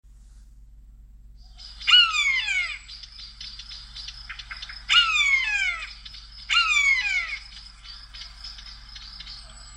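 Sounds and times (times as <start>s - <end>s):
buzzard calling: 1.5s - 8.7s.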